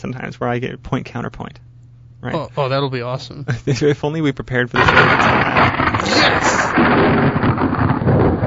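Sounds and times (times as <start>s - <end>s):
speech: 0.0s - 8.4s
thunder sound effect roaring rumble: 4.8s - 8.4s.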